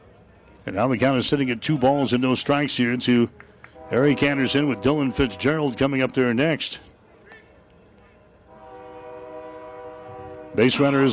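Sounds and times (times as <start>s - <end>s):
low rumble of passing rail traffic: 0.0s - 11.1s
speech: 0.6s - 6.9s, 10.6s - 11.1s
train horn sustained multi-tone blast: 3.8s - 6.0s, 8.5s - 11.1s.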